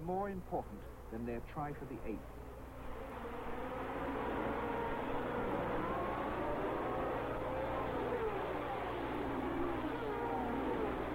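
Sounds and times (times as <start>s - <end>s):
speech: 0.0s - 2.4s
Formula One race cars roaring at the Monza Grand Prix: 2.2s - 11.1s.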